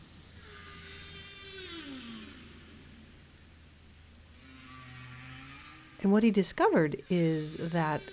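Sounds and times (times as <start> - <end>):
whale calls in an underwater recording: 0.4 - 3.2, 4.3 - 6.0
speech: 6.0 - 8.1.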